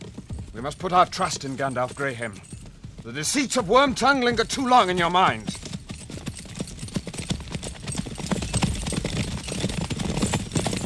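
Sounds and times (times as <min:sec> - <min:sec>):
ridden horses' hooves clip-clopping: 0:00.0 - 0:10.8
speech: 0:00.6 - 0:05.6.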